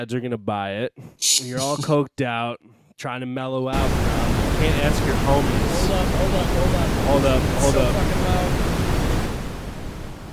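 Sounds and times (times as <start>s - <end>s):
speech: 0.0s - 8.6s
loud white noise hissing: 3.8s - 10.3s.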